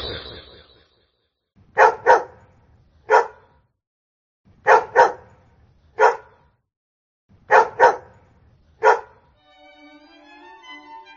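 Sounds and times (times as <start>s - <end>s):
brief tonal chime: 0.0s - 1.2s
several dogs barking: 1.8s - 2.5s, 3.1s - 3.6s, 4.6s - 5.4s, 6.0s - 6.5s, 7.5s - 8.2s, 8.8s - 9.3s.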